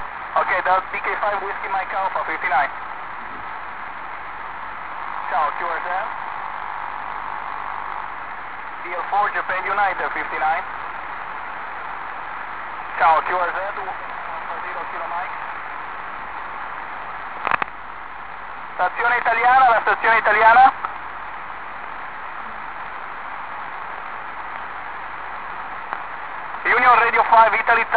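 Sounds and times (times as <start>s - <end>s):
50 MHz radio signal: 0.0s - 3.5s, 5.0s - 10.8s, 12.7s - 15.6s, 18.7s - 20.9s, 25.7s - 27.9s.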